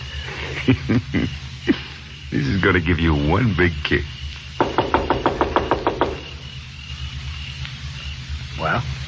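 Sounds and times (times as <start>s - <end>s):
laughter: 0.1s - 2.0s
speech: 0.7s - 4.2s, 8.6s - 9.0s
knocking on a door: 4.6s - 6.4s.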